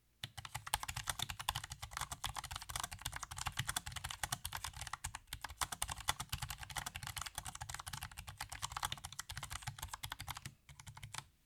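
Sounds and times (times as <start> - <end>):
normal typing on K100 Air: 0.2 - 11.3.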